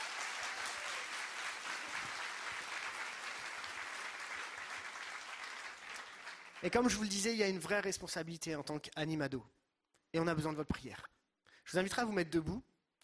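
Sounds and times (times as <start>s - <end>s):
crowd applauding: 0.0s - 7.0s
speech: 6.6s - 13.0s.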